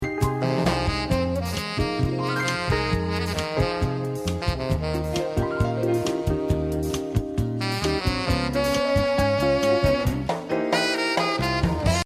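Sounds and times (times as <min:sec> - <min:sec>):
jazz saxophone: 0:00.1 - 0:12.0.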